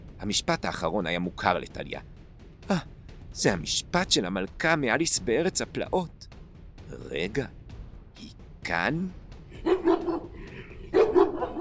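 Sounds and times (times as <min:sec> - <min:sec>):
speech: 0:00.2 - 0:02.1, 0:02.7 - 0:06.3, 0:06.9 - 0:07.6, 0:08.2 - 0:09.2
two dogs barking as they leap forward: 0:09.6 - 0:11.5.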